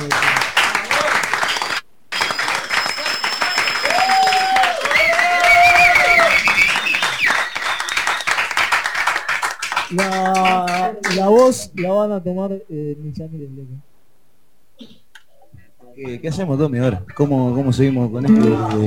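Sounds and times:
crowd applause and clapping at a party event: 0.0 - 12.0
speech: 10.0 - 13.9, 16.0 - 18.8.

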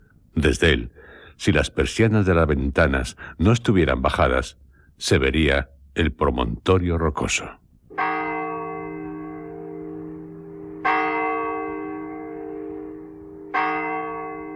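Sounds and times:
speech: 0.4 - 7.6
church clock bells striking nine o'clock: 7.9 - 14.5.

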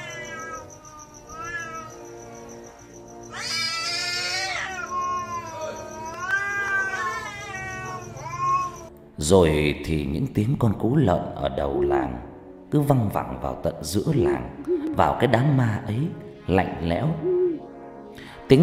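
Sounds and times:
cats yowling at night: 0.0 - 2.2, 3.3 - 8.9
speech: 9.2 - 17.3, 18.5 - 18.6.

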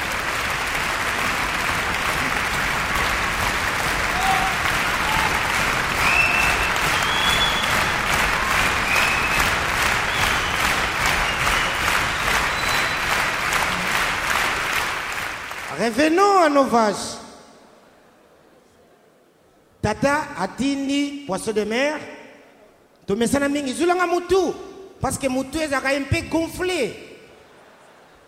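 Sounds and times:
large crowd applauding at a live stand-up comedy show: 0.0 - 16.1
speech: 15.9 - 17.2, 19.9 - 22.1, 23.1 - 27.0.

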